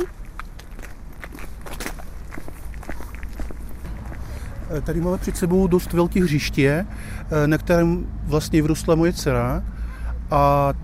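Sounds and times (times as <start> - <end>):
footsteps crunching outdoors at a walking pace: 0.0 - 6.4
low rumble: 0.0 - 10.0
speech: 4.7 - 10.8.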